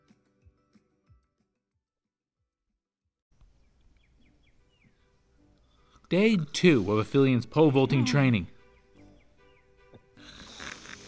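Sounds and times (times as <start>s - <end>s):
speech: 6.1s - 8.5s
sleeping person snoring loudly: 10.2s - 11.0s.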